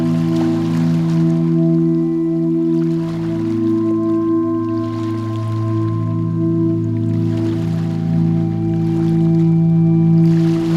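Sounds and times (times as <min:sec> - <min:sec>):
gentle waves lapping at the shore: 0:00.0 - 0:10.7
steady low droning hum: 0:00.0 - 0:10.7.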